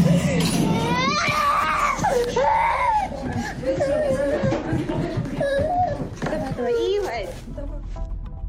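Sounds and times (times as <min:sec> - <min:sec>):
noisy chaotic background: 0:00.0 - 0:08.4
child screaming and wailing in distress: 0:00.5 - 0:06.9.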